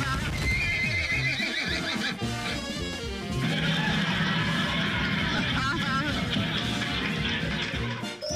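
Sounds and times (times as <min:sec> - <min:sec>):
laughter: 0:00.0 - 0:02.3, 0:03.3 - 0:08.2
horse neighing: 0:00.4 - 0:02.6.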